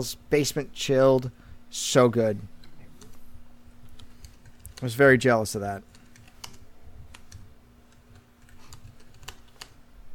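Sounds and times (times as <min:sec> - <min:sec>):
speech: 0:00.0 - 0:02.6, 0:04.8 - 0:05.9
low steady hum: 0:00.0 - 0:10.1
typing on a computer keyboard: 0:04.0 - 0:04.9, 0:05.9 - 0:09.8.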